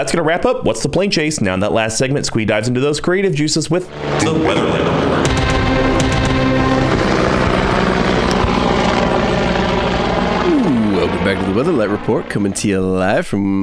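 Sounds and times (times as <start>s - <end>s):
speech: 0.0s - 5.3s, 11.6s - 13.6s
loud helicopter rotor droning: 3.9s - 13.2s.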